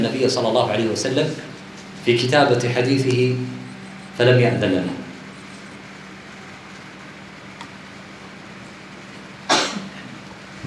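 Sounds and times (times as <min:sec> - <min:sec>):
speech: 0:00.0 - 0:03.6, 0:04.2 - 0:05.0
sneeze: 0:09.5 - 0:10.1.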